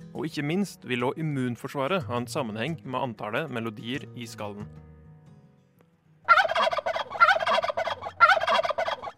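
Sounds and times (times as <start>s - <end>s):
speech: 0.2s - 4.9s
male turkey gobbling: 6.3s - 9.1s.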